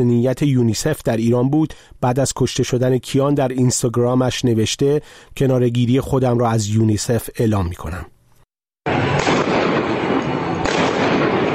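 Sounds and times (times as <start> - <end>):
speech: 0.0 - 8.2, 8.8 - 9.2
gunfire barrage in a news video: 8.9 - 11.5.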